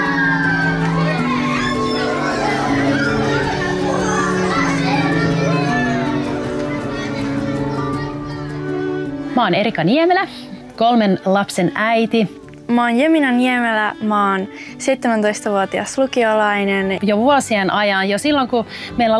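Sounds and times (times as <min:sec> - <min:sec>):
crowd of excited children squealing and shouting over gift packages: 0:00.0 - 0:09.2
children chattering: 0:00.0 - 0:09.3, 0:13.8 - 0:17.1
speech: 0:09.4 - 0:19.1.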